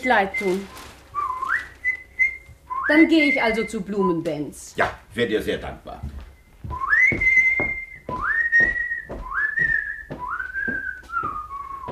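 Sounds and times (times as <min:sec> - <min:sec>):
speech: 0:00.0 - 0:00.8, 0:02.9 - 0:06.2
man whistling a slow operatic melody: 0:00.3 - 0:03.8, 0:06.7 - 0:11.9
soft rhythmic knocks: 0:05.9 - 0:11.9.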